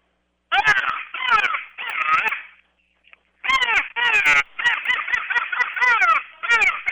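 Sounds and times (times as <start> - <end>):
crow call blown on a wooden game call: 0.5 - 2.6, 3.4 - 6.8.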